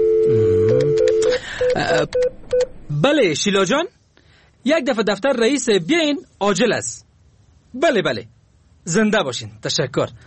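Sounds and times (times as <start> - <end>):
telephone dial tone: 0.0 - 2.6
telephone keypad beeps at varied pitches: 0.0 - 2.7
speech: 1.8 - 4.0, 4.6 - 7.0, 7.7 - 10.2.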